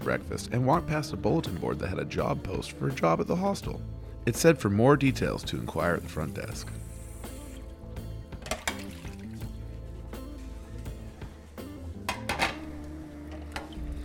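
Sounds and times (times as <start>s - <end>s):
speech: 0.1s - 6.8s
running water: 8.4s - 11.3s, 13.1s - 14.0s
plates and utensils clinking and clattering while washing dishes: 12.0s - 12.7s.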